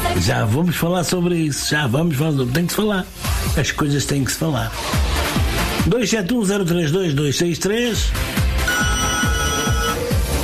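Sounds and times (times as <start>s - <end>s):
speech: 0.2s - 5.1s, 5.8s - 8.4s
telephone ringing: 8.6s - 10.2s.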